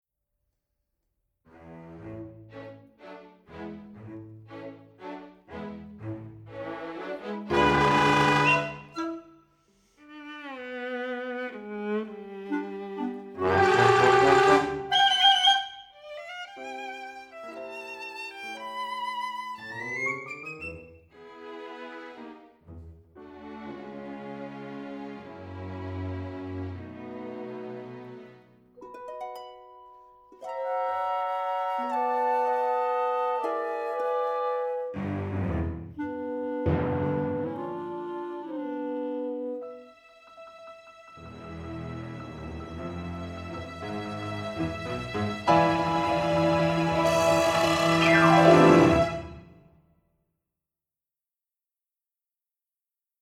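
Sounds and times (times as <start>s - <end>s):
light orchestral farce music for animation: 1.5s - 49.6s.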